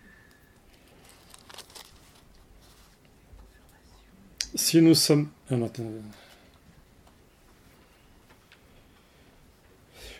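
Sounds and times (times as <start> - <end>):
thin Bible paper pages being turned: 0.7 - 3.1
speech: 4.6 - 6.3.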